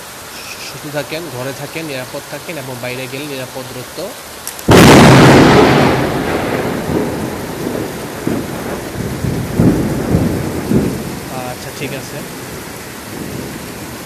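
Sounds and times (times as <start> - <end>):
steady roar of heavy rain: 0.0 - 14.0
speech: 0.8 - 4.4, 11.8 - 12.6
thunderclap rolling into a long rumble: 4.7 - 14.0.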